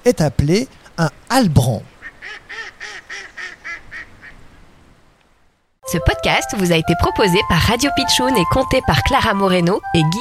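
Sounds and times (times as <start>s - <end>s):
speech: 0.0s - 2.4s, 5.9s - 10.1s
mallard duck quacking: 2.0s - 4.4s.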